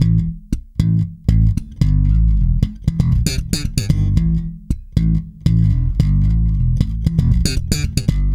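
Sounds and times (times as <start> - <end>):
thumbed bass guitar: 0.0 - 8.3.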